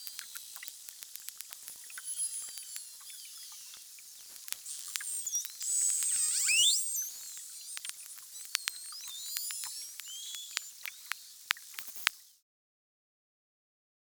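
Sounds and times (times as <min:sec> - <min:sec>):
beluga whale high whistled squeals: 0:04.7 - 0:11.0.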